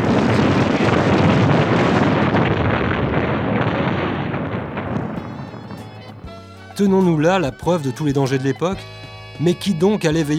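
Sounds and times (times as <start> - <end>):
fireworks mortar explosions roaring: 0.0 - 8.4
speech: 6.8 - 10.3.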